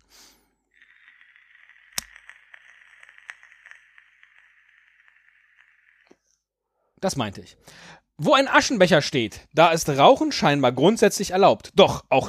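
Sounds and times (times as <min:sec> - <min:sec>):
e-cigarette draw sizzling hiss with faint crackles: 0:00.1 - 0:06.1
speech: 0:07.0 - 0:12.2.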